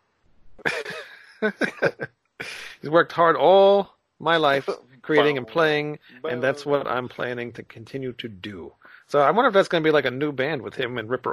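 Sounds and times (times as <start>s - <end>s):
person coughing: 0.7s - 1.1s
laughter: 0.7s - 2.9s, 4.5s - 5.5s, 6.2s - 6.8s
speech: 1.4s - 11.3s.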